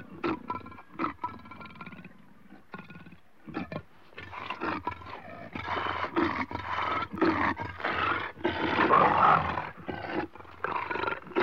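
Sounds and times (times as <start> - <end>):
leopards growling and breathing in Africa: 0.0 - 11.4.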